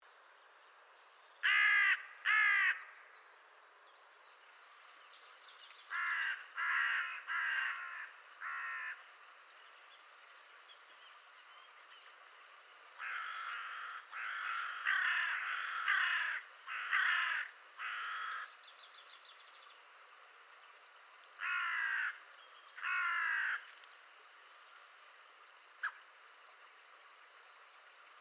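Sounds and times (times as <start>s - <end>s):
carrion crow: 1.4s - 3.0s, 5.9s - 9.0s, 13.0s - 18.5s, 21.4s - 22.2s, 22.8s - 23.7s.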